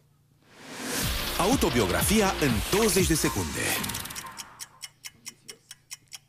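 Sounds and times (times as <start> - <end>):
speech: 1.4 - 4.0
stopwatch ticking: 2.2 - 6.2.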